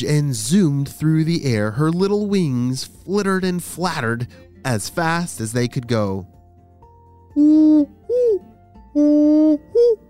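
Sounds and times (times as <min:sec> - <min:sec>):
speech: 0:00.0 - 0:06.3, 0:07.4 - 0:10.0
great horned owl hooting: 0:07.3 - 0:10.0.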